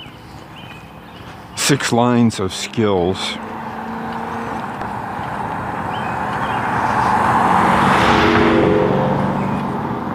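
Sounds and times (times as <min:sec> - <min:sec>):
loud muscle car engine roaring as vehicle passes: 0:00.1 - 0:10.1
speech: 0:01.7 - 0:03.5.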